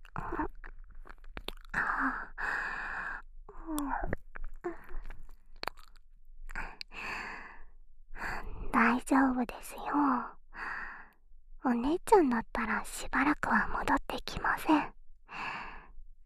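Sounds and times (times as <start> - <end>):
wet chewing and biting on a soft ear: 0.0 - 2.1, 3.6 - 7.0
sighs and breaths: 1.7 - 4.0, 6.5 - 8.8, 10.2 - 11.2, 15.3 - 16.0
speech: 8.9 - 10.4, 11.6 - 15.0.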